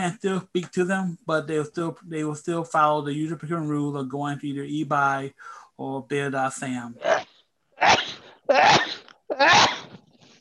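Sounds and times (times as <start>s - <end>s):
speech: 0.0s - 9.7s
person sneezing: 7.8s - 10.0s.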